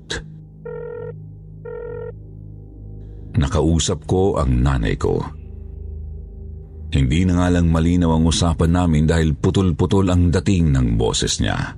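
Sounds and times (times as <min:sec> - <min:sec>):
cellphone ringing in electronic bursts: 0:00.6 - 0:02.2
speech: 0:03.4 - 0:05.4, 0:06.9 - 0:11.7.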